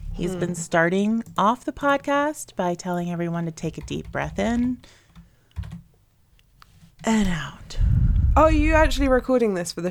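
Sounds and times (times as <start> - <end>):
speech: 0.2 - 5.0, 7.0 - 9.8
typing on a computer keyboard: 3.6 - 5.9.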